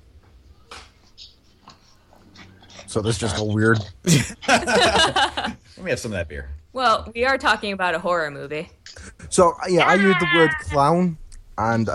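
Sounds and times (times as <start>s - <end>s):
dog making short breathy snorting bursts: 1.9s - 4.7s
speech: 2.9s - 8.8s, 9.4s - 11.9s
laughter: 3.0s - 5.7s.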